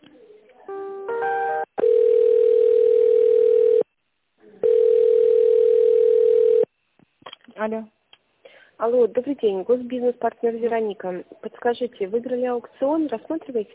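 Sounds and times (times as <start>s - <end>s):
telephone line tones while a call is transferred: 1.2s - 3.8s, 4.6s - 6.7s
speech: 7.6s - 8.0s, 8.8s - 13.7s.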